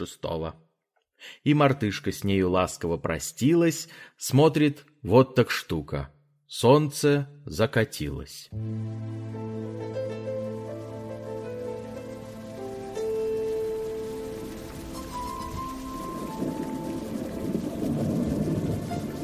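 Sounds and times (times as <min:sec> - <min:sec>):
speech: 0:00.0 - 0:00.6, 0:01.2 - 0:11.6
sustained musical tones: 0:08.6 - 0:19.2
raindrops pattering on leaves: 0:10.0 - 0:19.2.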